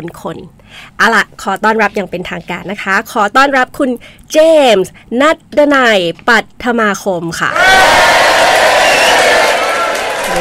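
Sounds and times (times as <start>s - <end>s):
speech: 0.0s - 8.2s
loud crowd cheering and whooping: 7.5s - 10.3s.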